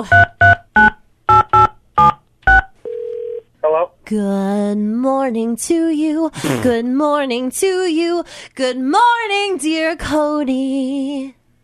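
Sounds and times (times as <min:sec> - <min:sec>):
speech: 0:00.0 - 0:00.4, 0:04.1 - 0:11.4
steady low phone ringing tone: 0:01.3 - 0:03.9.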